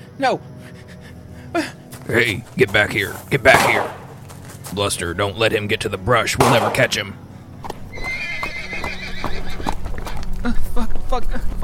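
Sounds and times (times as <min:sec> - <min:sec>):
speech: 0:00.2 - 0:00.8, 0:01.5 - 0:04.0, 0:04.7 - 0:07.2, 0:10.4 - 0:11.6
horse hooves clopping and stamping on the ground: 0:01.9 - 0:05.8, 0:07.6 - 0:11.6
horse whinnying: 0:07.9 - 0:09.9.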